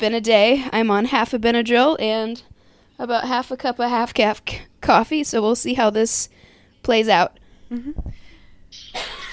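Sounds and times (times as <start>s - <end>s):
speech: 0.0s - 9.2s
person under the weather coughing: 8.8s - 9.3s.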